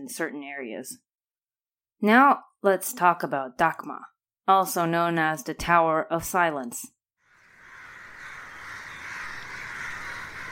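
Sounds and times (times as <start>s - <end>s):
speech: 0.0s - 1.1s, 2.0s - 7.0s
many crows cawing at once: 7.3s - 10.4s.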